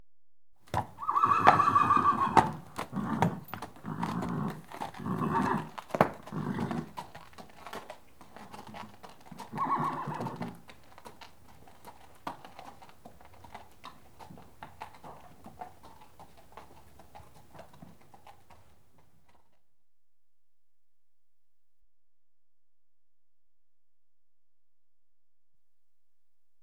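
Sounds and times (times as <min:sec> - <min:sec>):
horse led out of stable: 0:00.7 - 0:19.5.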